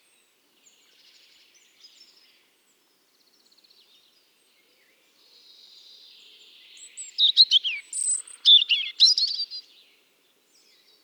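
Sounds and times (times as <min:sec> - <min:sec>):
European robin Erithacus rubecula song: 0:07.4 - 0:09.6.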